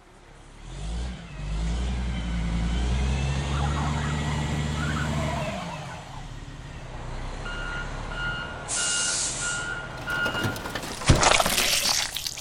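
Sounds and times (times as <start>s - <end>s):
heavy truck engine rumbling: 0.0s - 12.3s
truck backup beeps: 7.5s - 10.8s
air brakes hissing: 8.7s - 9.7s.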